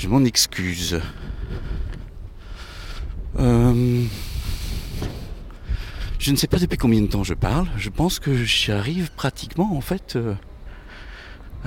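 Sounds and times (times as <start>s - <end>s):
speech: 0.0s - 1.7s, 3.4s - 4.3s, 6.2s - 10.5s
wind gusting into the microphone: 0.0s - 8.8s.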